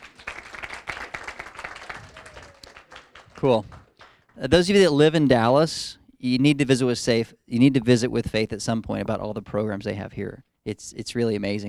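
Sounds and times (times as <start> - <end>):
small audience applause: 0.0 - 4.7
speech: 3.4 - 3.8, 4.4 - 11.6.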